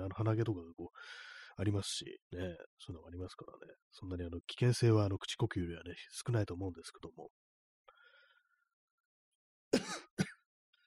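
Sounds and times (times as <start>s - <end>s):
speech: 0.0s - 7.4s
loud harsh coughs: 9.8s - 10.5s.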